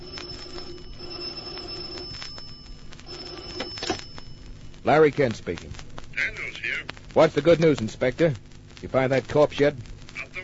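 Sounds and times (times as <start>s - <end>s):
old-fashioned telephone bell ringing: 0.0s - 4.5s
speech: 4.8s - 5.8s, 7.1s - 9.9s.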